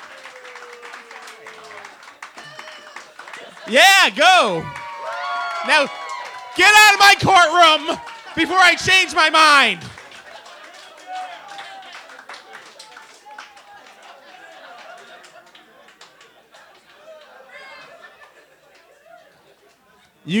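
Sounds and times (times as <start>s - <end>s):
live audience booing: 0.0s - 1.9s, 3.7s - 10.0s
scattered claps: 0.0s - 17.3s
crowd chatter: 1.3s - 10.0s, 19.0s - 20.3s
laughter: 2.6s - 6.0s, 6.6s - 11.1s, 14.0s - 19.6s
speech: 3.6s - 4.8s, 5.6s - 6.0s, 6.6s - 9.9s.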